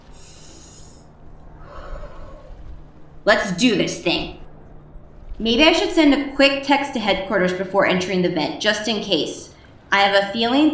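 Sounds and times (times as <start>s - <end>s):
deep breathing exercises: 0.0s - 3.0s
speech: 3.2s - 4.4s, 5.4s - 10.7s.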